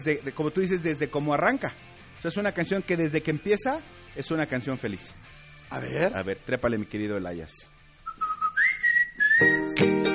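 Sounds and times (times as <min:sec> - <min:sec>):
speech: 0:00.0 - 0:07.7
cheerful melodic whistling: 0:08.0 - 0:10.1.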